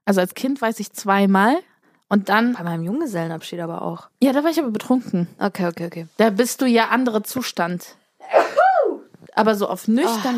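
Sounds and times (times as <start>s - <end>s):
speech: 0.1s - 8.5s, 9.4s - 10.3s
person sneezing: 8.2s - 9.0s.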